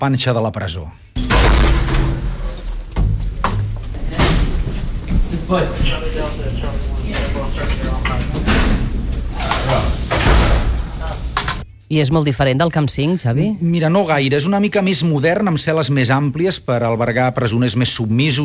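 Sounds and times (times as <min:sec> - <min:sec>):
speech: 0:00.0 - 0:01.7, 0:05.4 - 0:06.9, 0:11.9 - 0:18.4
heavy prison doors sliding and clanking open: 0:01.2 - 0:11.6
indistinct voices: 0:01.3 - 0:13.6.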